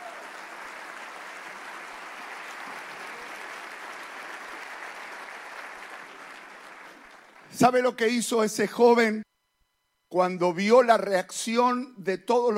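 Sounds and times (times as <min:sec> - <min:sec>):
sizable audience applause with many hands clapping: 0:00.0 - 0:07.6
speech: 0:07.5 - 0:09.3, 0:10.1 - 0:12.5.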